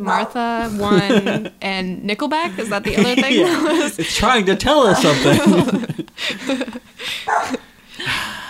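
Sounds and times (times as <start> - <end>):
dog barking indoors: 0.0 - 0.4, 7.3 - 7.6
speech: 0.0 - 7.6
laughter: 0.6 - 1.6, 2.4 - 8.2.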